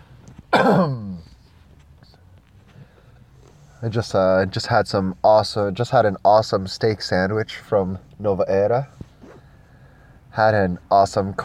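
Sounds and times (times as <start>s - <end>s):
throat clearing: 0.5s - 1.2s
speech: 0.6s - 1.0s, 3.8s - 9.0s, 10.4s - 11.4s.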